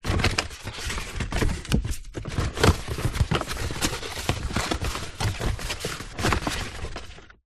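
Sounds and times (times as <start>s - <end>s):
empty fast food cardboard box flaps moving: 0.0s - 7.2s.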